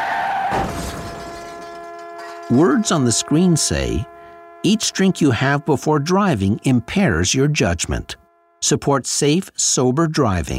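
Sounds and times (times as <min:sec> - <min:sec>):
car rear-ending the vehicle in front: 0:00.0 - 0:04.4
high car tire squeal: 0:00.0 - 0:08.6
speech: 0:02.5 - 0:10.5.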